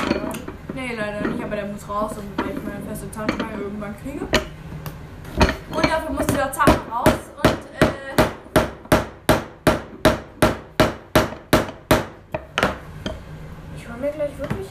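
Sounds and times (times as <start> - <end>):
speech: 0.8 - 4.6, 5.7 - 7.3, 14.0 - 14.7
heavy hammer banging: 5.4 - 12.8.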